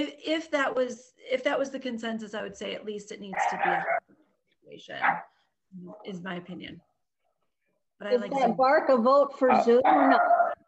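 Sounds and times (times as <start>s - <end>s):
speech: 0.0s - 4.1s, 4.7s - 6.9s, 8.0s - 10.4s
dog barking: 5.0s - 5.3s.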